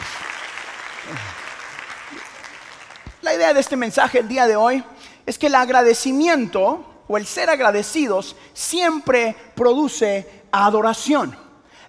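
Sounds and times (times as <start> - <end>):
audience applauding: 0.0 - 3.2
speech: 1.1 - 1.4, 3.3 - 11.4.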